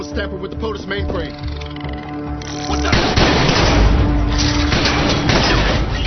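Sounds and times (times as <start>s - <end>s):
speech: 0.1s - 1.7s
gunshots fired in the underdeck of an aircraft: 2.9s - 5.9s.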